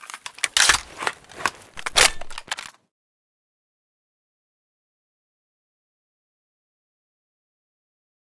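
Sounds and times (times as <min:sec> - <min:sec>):
L85 rifle reload: 0:00.0 - 0:02.8.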